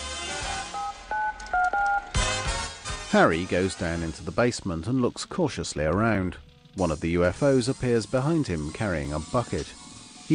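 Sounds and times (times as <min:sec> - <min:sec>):
cell phone keypad tones as a number is dialed: 0:00.5 - 0:02.2
speech: 0:03.1 - 0:10.3.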